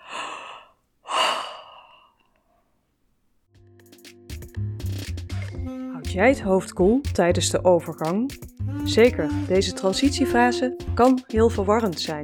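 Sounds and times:
person yawning and stretching before lying down: 0:00.0 - 0:02.2
music: 0:03.5 - 0:12.2
speech: 0:06.1 - 0:12.2.

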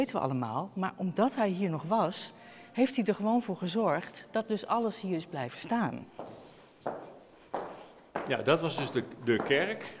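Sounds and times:
speech: 0:00.0 - 0:07.0, 0:08.3 - 0:09.9
footsteps walking through a church cloister: 0:06.1 - 0:09.9.

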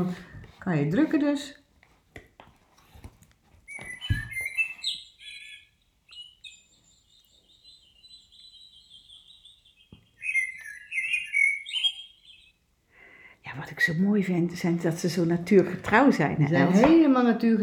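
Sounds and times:
speech: 0:00.0 - 0:01.6, 0:13.9 - 0:17.6
blackbird singing played from a small speaker of a sound book: 0:03.7 - 0:12.6.

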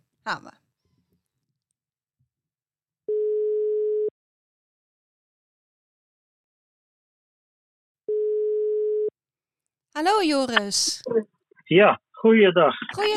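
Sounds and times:
speech: 0:00.2 - 0:00.6, 0:10.0 - 0:13.1
outgoing phone call ringing tone beeps: 0:03.1 - 0:04.1, 0:08.1 - 0:09.1.

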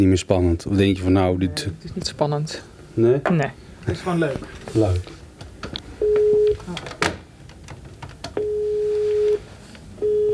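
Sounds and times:
speech: 0:00.0 - 0:05.2
busy noise: 0:00.0 - 0:10.3
low-pitched telephone ringing tones: 0:06.0 - 0:06.6, 0:08.4 - 0:09.4, 0:10.0 - 0:10.3.

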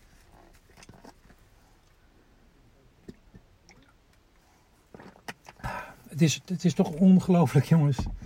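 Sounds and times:
person sipping water: 0:00.0 - 0:02.0, 0:03.0 - 0:06.1
person exhaling: 0:05.6 - 0:06.1
speech: 0:06.2 - 0:08.2.

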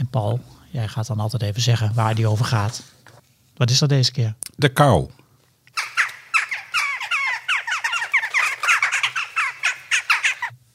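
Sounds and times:
speech: 0:00.1 - 0:03.0, 0:03.6 - 0:05.2
jackdaw calling: 0:05.7 - 0:10.6.

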